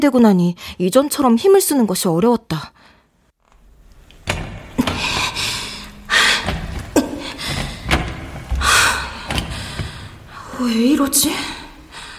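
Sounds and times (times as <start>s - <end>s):
speech: 0.0s - 2.9s, 10.6s - 11.6s
room door doorknob twisted and rattling: 4.1s - 10.0s.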